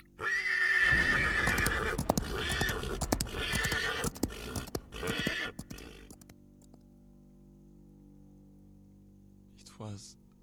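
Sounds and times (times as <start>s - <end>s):
horse neighing in distress after a saber wound: 0.1s - 6.2s.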